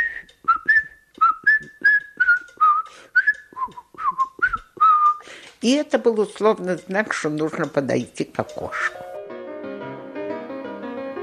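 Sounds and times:
person whistling a brisk fugue melody: 0.0 - 5.2
speech: 5.6 - 9.0.

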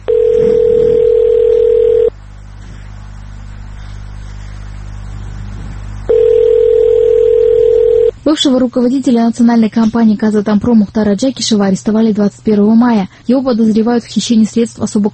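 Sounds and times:
ringback tone of an unanswered telephone call: 0.0 - 2.1, 6.1 - 8.1
faint hum: 0.0 - 15.1
speech: 8.4 - 15.1.

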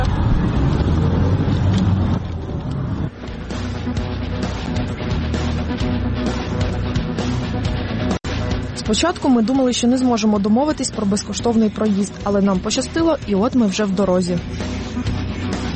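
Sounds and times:
taxi engine and tire drone on a highway: 0.0 - 8.8, 14.4 - 15.7
speech: 8.9 - 15.1.

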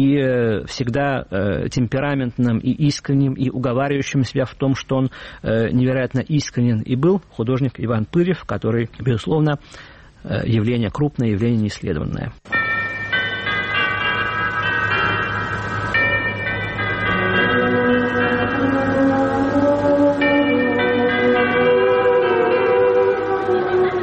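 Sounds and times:
speech: 0.0 - 12.6
clock tower chimes ringing: 12.5 - 24.0
constant low drone: 13.0 - 24.0.

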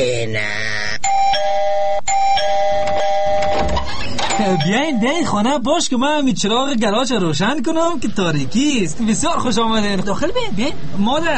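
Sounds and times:
house doorbell electronic chime ringing at night: 1.1 - 5.3
speech: 4.5 - 11.3.

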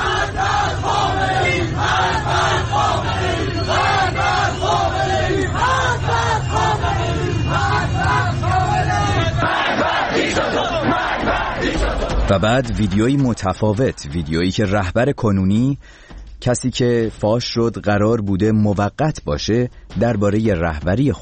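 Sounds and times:
crowd of protesters chanting anti-government slogans in the streets of Iran: 0.0 - 13.2
speech: 12.3 - 21.2.

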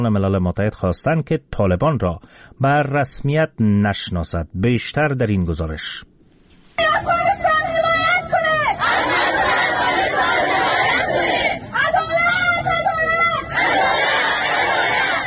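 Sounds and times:
speech: 0.0 - 6.1, 6.8 - 7.5
Afghan women chanting slogans in unison at a protest in Islamabad: 6.8 - 15.2
overlapping crowd noise at a protest: 6.8 - 15.2.

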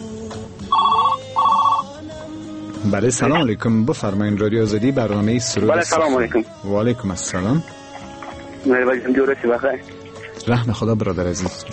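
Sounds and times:
telephone ringing with an incoming call to a radio call-in program: 0.7 - 1.9
speech: 2.8 - 7.8, 8.6 - 11.7.

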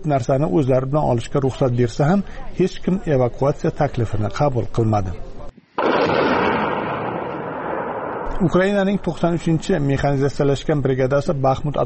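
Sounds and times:
speech: 0.0 - 5.3, 8.4 - 11.8
dense roaring rumble of explosion in war footage: 5.8 - 8.8
loud explosion blast in war footage: 5.8 - 9.1.

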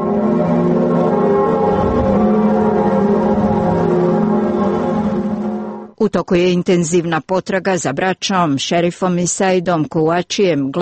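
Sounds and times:
large cathedral bells ringing: 0.0 - 6.0
speech: 6.1 - 10.7.

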